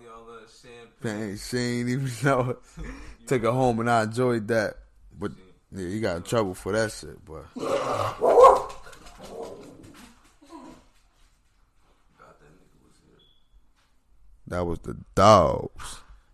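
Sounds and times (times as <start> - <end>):
speech: 0.2 - 8.4, 14.5 - 16.0
dogs barking: 8.1 - 9.6.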